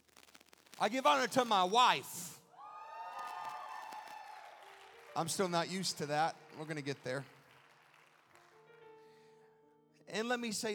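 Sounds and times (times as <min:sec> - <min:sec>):
speech: 0:00.8 - 0:02.2, 0:05.2 - 0:07.4, 0:10.1 - 0:10.7
crowd cheering and whooping: 0:02.5 - 0:05.1.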